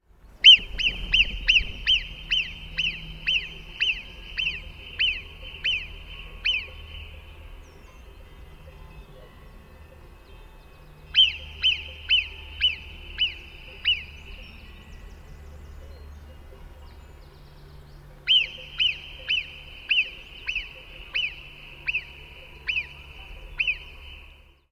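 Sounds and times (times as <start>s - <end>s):
Marmota marmota alarm calls: 0.4s - 7.7s, 11.1s - 14.5s, 18.2s - 24.3s.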